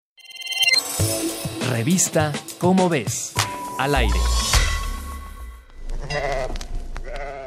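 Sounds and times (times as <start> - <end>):
speech: 1.0 - 4.6, 6.1 - 6.6
sheep bleating: 5.8 - 7.4.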